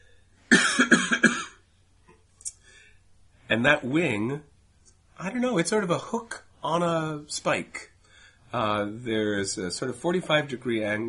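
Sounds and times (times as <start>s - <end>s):
person coughing: 0.5s - 1.6s
faint breath: 2.6s - 3.1s, 8.0s - 8.5s
speech: 3.5s - 4.5s, 5.2s - 7.9s, 8.5s - 11.0s.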